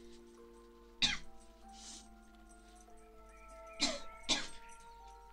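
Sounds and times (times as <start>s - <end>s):
person clearing throat: 1.1s - 1.3s, 3.8s - 4.6s
person coughing: 1.1s - 1.3s, 3.8s - 4.6s.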